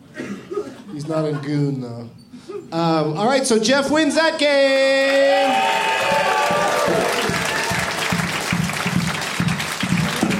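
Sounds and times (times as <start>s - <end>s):
speech: 1.0s - 7.2s
broad applause: 4.8s - 10.3s
loud sarcastic angry clapping: 5.0s - 10.3s.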